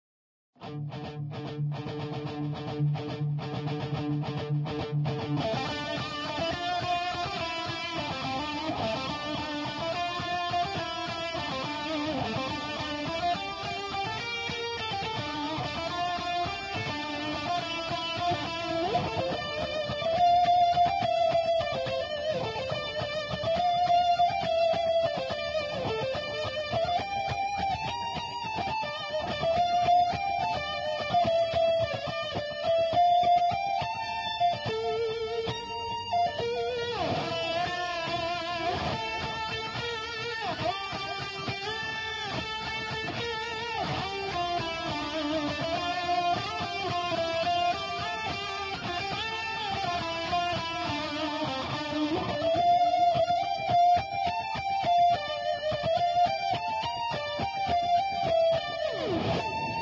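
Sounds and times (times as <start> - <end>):
electric guitar: 0.6 - 59.8.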